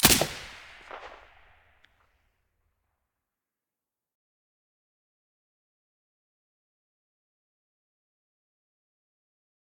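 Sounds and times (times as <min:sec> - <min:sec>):
silenced weapon shot in stereo: 0:00.0 - 0:01.6.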